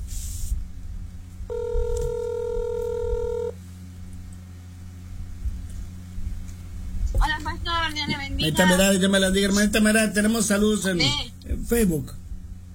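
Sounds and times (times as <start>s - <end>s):
low hum: 0.0s - 12.7s
telephone ring tone: 1.5s - 3.6s
speech: 7.9s - 12.2s.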